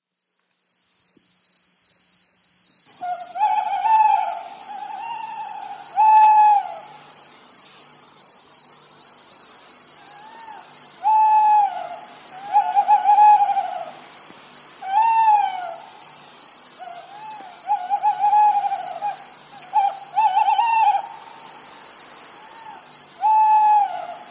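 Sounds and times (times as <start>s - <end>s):
crickets chirping at night: 0.1s - 24.3s
tawny owls hooting at night: 3.0s - 7.0s, 10.1s - 14.0s, 14.8s - 16.0s, 16.8s - 21.4s, 22.4s - 24.3s.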